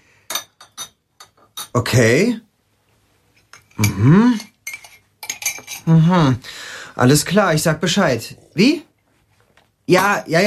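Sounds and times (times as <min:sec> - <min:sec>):
cutlery and dishes clinking during breakfast in a kitchen: 0:00.3 - 0:01.8, 0:03.4 - 0:06.0
speech: 0:01.8 - 0:02.5, 0:03.8 - 0:04.5, 0:05.8 - 0:08.9, 0:09.9 - 0:10.4.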